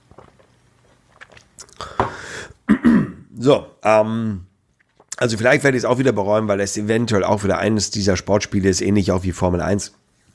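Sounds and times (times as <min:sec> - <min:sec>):
person drinking a beverage: 0:00.0 - 0:02.9, 0:04.7 - 0:05.2
speech: 0:02.8 - 0:04.5, 0:05.2 - 0:10.0.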